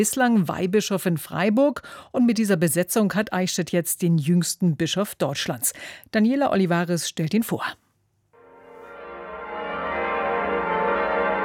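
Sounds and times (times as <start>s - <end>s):
speech: 0.0s - 7.8s
church bells ringing: 8.4s - 11.4s.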